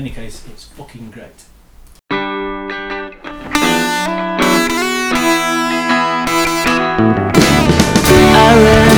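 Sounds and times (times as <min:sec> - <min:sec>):
speech: 0:00.0 - 0:01.6
loud rock song with distorted electric guitar chords and full band: 0:03.3 - 0:08.9.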